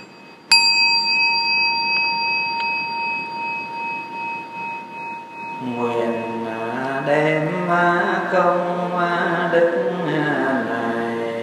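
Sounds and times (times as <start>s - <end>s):
meditation bell struck and ringing during a seated group meditation: 0.0s - 8.6s
speech: 7.1s - 10.4s.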